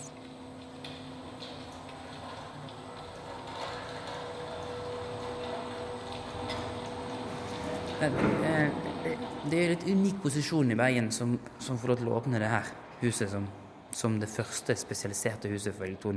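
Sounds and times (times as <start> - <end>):
mechanical sound art installation machinery whirring: 3.0 - 11.8
speech: 8.0 - 16.1.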